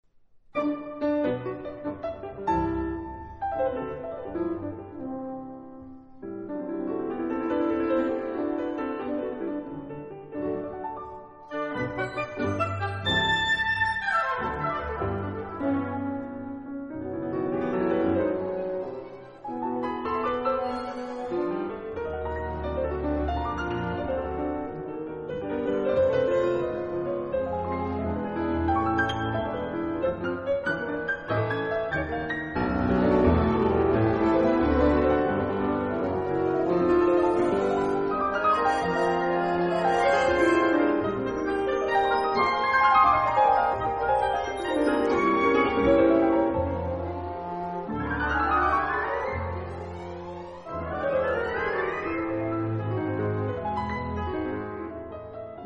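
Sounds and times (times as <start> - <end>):
piano: 0.0 - 55.6.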